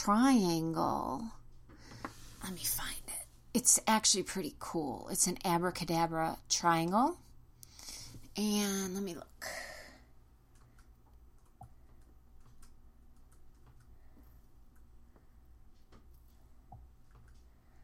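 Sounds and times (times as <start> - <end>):
speech: 0.0 - 1.4, 2.4 - 7.2, 8.4 - 9.7
low steady hum: 0.0 - 17.8
typing on a computer keyboard: 10.5 - 14.1.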